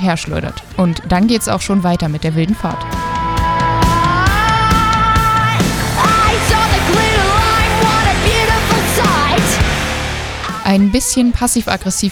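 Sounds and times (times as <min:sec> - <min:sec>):
speech: 0:00.0 - 0:03.0, 0:10.7 - 0:12.1
distorted guitars: 0:00.0 - 0:12.0
loud dense metal song with distorted guitars: 0:02.8 - 0:11.6
pounding drums: 0:02.9 - 0:11.3.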